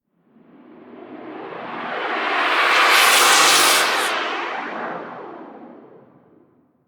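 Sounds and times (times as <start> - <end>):
short gas air gust: 2.4 - 4.2.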